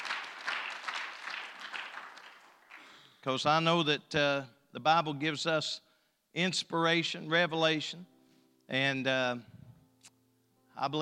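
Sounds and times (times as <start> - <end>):
crowd clapping: 0.0 - 3.2
speech: 3.2 - 8.1, 8.7 - 9.6, 10.8 - 10.9.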